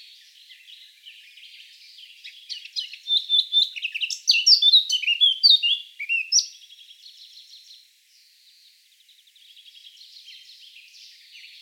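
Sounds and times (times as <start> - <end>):
Eurasian blackcap singing, Sylvia atricapilla: 2.5 - 6.5.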